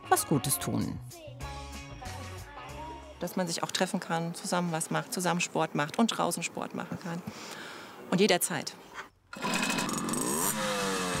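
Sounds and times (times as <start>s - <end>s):
speech: 0.2s - 1.5s, 3.2s - 9.5s
moped engines of a small moped club revving: 9.4s - 11.1s.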